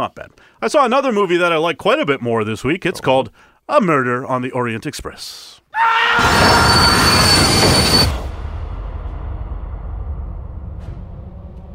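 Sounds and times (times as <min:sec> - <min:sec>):
speech: 0:00.0 - 0:08.2
sharp metallic train wheel squeal: 0:06.2 - 0:08.3
loud train rolling along the rails with heavy rumble: 0:07.3 - 0:11.7.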